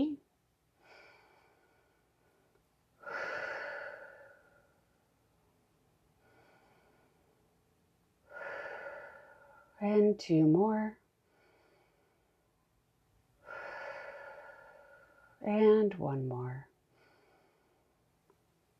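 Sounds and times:
deep breathing in through nose and out through mouth: 0:00.8 - 0:05.0, 0:06.1 - 0:07.5, 0:08.2 - 0:09.8, 0:11.2 - 0:12.5, 0:13.4 - 0:15.4, 0:16.9 - 0:18.0
speech: 0:09.8 - 0:11.0, 0:15.4 - 0:16.7.

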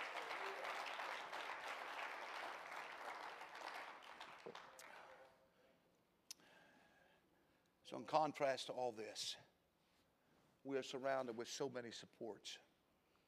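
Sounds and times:
large audience clapping: 0:00.0 - 0:05.4
speech: 0:07.9 - 0:09.5, 0:10.6 - 0:12.7.

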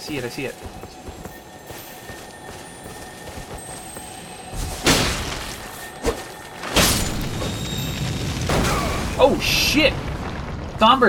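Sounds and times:
speech: 0:00.1 - 0:01.1, 0:09.2 - 0:10.1, 0:10.8 - 0:11.0
beetle creature exploding in a video game: 0:06.8 - 0:10.9.

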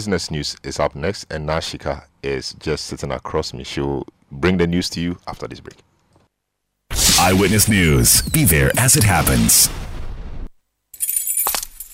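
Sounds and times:
speech: 0:00.0 - 0:05.9, 0:07.2 - 0:10.0
keys jingling: 0:10.9 - 0:11.9.

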